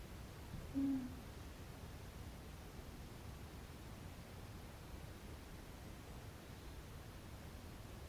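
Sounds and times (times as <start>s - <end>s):
quiet hiss: 0.0s - 8.0s
single low steady hooting bird call: 0.7s - 1.2s.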